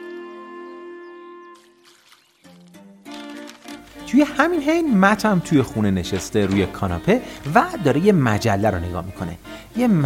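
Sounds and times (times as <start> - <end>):
water pouring and splashing while watering flowers: 1.6 - 4.0
speech: 4.1 - 10.0.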